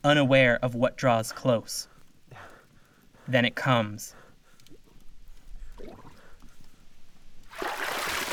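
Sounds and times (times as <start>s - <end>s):
speech: 0.0s - 1.9s, 3.3s - 4.2s
water surging and splashing: 7.4s - 8.3s.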